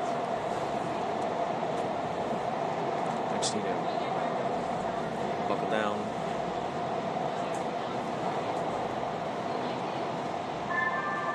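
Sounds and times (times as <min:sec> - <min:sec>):
metro train arriving at 7th Street Metro Center station: 0:00.0 - 0:11.3
speech: 0:03.4 - 0:04.0, 0:05.5 - 0:06.2
faint high tonal whine of slowing metro train: 0:10.7 - 0:11.3.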